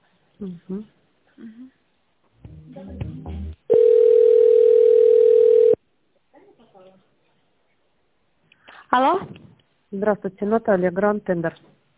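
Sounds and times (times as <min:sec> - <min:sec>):
speech: 0:00.4 - 0:01.8, 0:02.7 - 0:03.5, 0:08.9 - 0:11.8
telephone tone while a call is being transferred: 0:03.7 - 0:05.8.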